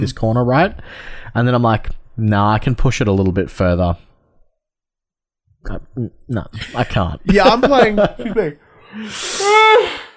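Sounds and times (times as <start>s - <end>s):
speech: 0.0s - 4.1s, 5.6s - 10.0s
laughter: 6.6s - 8.7s
person yawning: 9.0s - 10.1s.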